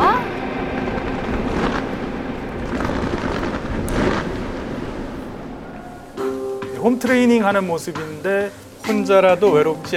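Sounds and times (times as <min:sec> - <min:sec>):
fireworks booming at opening ceremony: 0:00.0 - 0:06.3
speech: 0:06.8 - 0:09.9.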